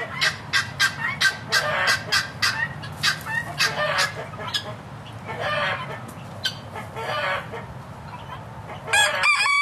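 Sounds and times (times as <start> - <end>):
flock of chickens clucking on an organic farm: 0.0 - 9.5
steady low farmyard rumble: 0.0 - 9.5
rooster crowing: 8.9 - 9.5.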